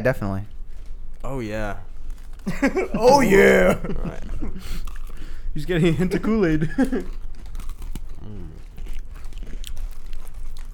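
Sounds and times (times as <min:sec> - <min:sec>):
speech: 0:00.0 - 0:00.5, 0:01.2 - 0:07.2
laughter: 0:02.5 - 0:04.8, 0:06.5 - 0:07.1
murmured voice: 0:02.6 - 0:04.5
person chewing a hard fruity snack: 0:04.8 - 0:05.3, 0:06.8 - 0:10.7.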